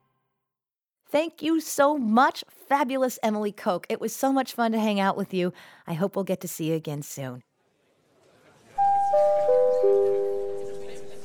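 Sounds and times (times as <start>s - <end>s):
speech: 1.1s - 7.5s
bell chime ringing four clear descending notes: 8.8s - 11.2s.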